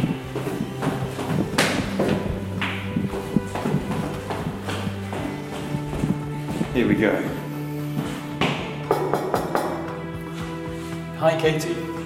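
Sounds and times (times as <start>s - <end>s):
footsteps on a hard floor: 0.0s - 11.1s
speech: 6.8s - 7.4s, 11.2s - 12.0s.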